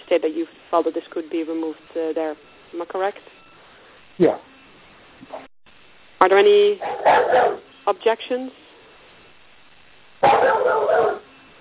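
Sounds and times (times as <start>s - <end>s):
speech: 0.1s - 3.4s, 4.2s - 4.5s, 5.2s - 5.5s, 6.2s - 8.6s, 10.2s - 11.2s
dog barking excitedly: 6.8s - 7.7s, 10.2s - 11.3s.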